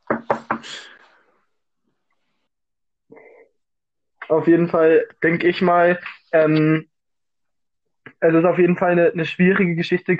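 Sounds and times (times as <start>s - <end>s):
knuckles knocking on wood: 0.0s - 0.7s
speech: 4.3s - 6.9s, 8.2s - 10.1s.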